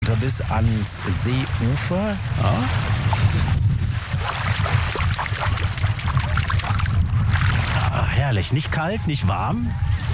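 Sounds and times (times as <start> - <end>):
water sloshing and splashing: 0.0 - 8.0
speech: 0.2 - 3.4, 8.2 - 10.1.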